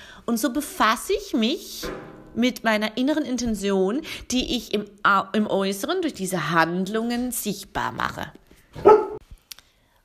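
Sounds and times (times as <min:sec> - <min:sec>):
speech: 0:00.3 - 0:09.0
dog barking: 0:08.8 - 0:09.2.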